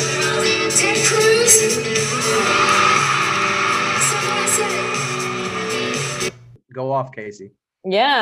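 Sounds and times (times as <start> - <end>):
large concert crowd cheering: 0.2 - 6.3
crowd shouts, whoops and yells: 1.8 - 6.3
speech: 7.0 - 8.2.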